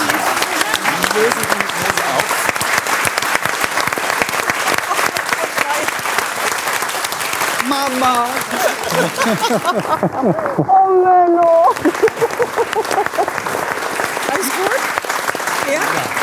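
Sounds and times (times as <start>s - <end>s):
faint murmur of voices: 0.0s - 2.7s, 4.7s - 11.8s
audience applause: 0.0s - 16.2s
speech: 1.2s - 1.6s, 8.0s - 13.8s
laughter: 4.6s - 5.5s, 7.9s - 10.8s, 11.7s - 13.6s.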